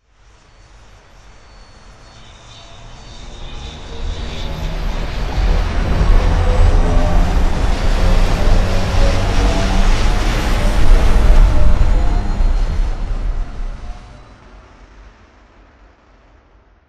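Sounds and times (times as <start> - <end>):
hovering hum: 2.6 - 14.4.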